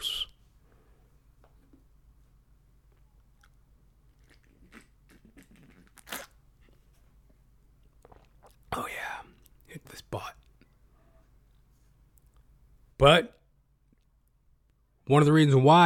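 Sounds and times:
low steady hum: 0.0 - 15.8
person sipping coffee: 3.0 - 7.0, 7.8 - 10.9
speech: 13.0 - 13.4, 15.1 - 15.8.

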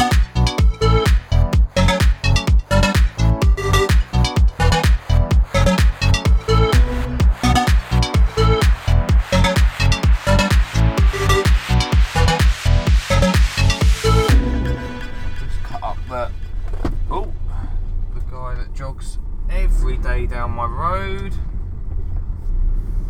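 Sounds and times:
rhythmic music: 0.0 - 16.1
car engine rumble from inside the cabin: 0.0 - 23.0
road noise from inside the cabin: 0.0 - 23.0
people talking: 15.5 - 16.5, 17.1 - 21.4.

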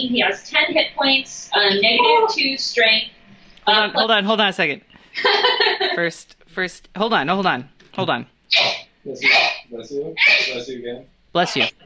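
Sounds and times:
speech: 0.0 - 11.8
laughter: 1.8 - 2.4, 5.2 - 6.0
person sneezing loudly: 10.2 - 10.6.

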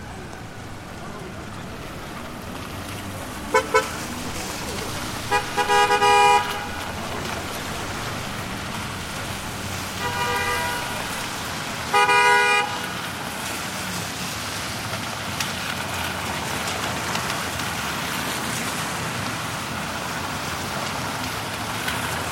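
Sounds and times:
car horn honks: 0.0 - 13.0
busy street traffic at a city corner: 0.0 - 22.3.

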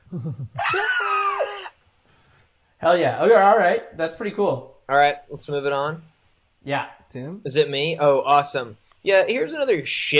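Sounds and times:
speech: 0.1 - 1.4, 2.8 - 10.1
person mimicking a scream: 0.6 - 1.8.

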